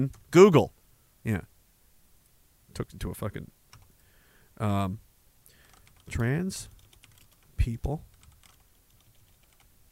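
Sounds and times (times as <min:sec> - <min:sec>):
speech: 0:00.0 - 0:01.5, 0:02.8 - 0:03.6, 0:04.6 - 0:05.0, 0:06.1 - 0:06.7, 0:07.6 - 0:08.1
typing on a computer keyboard: 0:05.6 - 0:07.5, 0:08.1 - 0:09.7.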